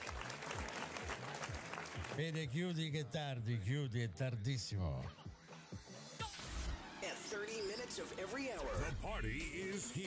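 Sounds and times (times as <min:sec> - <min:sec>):
audience applause: 0:00.0 - 0:02.4
speech: 0:02.2 - 0:05.2, 0:07.3 - 0:10.0.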